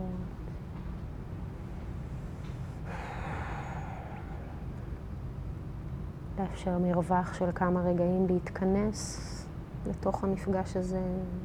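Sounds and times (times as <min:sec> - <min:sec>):
steady low rumbling background: 0:00.0 - 0:11.4
deep airy breath: 0:02.0 - 0:05.2
speech: 0:06.4 - 0:11.4.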